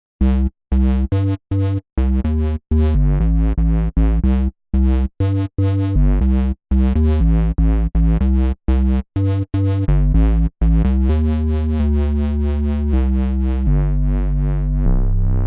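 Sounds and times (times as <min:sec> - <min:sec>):
RK100S synth bass: 0:00.2 - 0:15.4.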